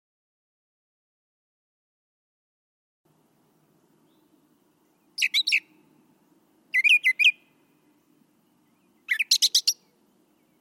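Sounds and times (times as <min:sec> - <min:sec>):
faint low hum: 0:03.1 - 0:10.5
brown thrasher song of rapid varied notes: 0:03.6 - 0:10.5.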